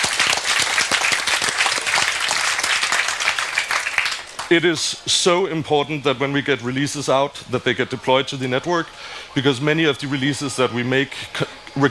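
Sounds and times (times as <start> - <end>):
audience applause: 0.0 - 4.5
speech: 4.5 - 11.8.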